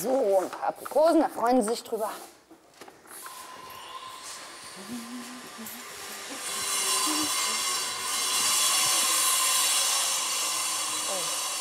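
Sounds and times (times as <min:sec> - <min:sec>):
speech: 0:00.0 - 0:02.4, 0:04.8 - 0:05.9
construction drilling machinery at a building site for an elephant enclosure: 0:03.2 - 0:11.5.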